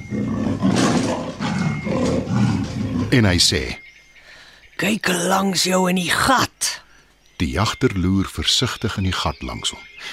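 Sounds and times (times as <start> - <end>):
leopard roaring with deep rumbling growls: 0.0 - 3.2
speech: 3.1 - 3.8, 4.8 - 6.8, 7.4 - 10.1.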